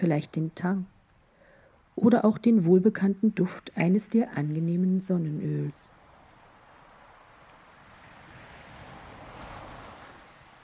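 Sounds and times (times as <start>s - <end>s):
speech: 0.0s - 0.9s, 2.0s - 6.0s
ocean waves breaking on shore: 5.9s - 10.6s.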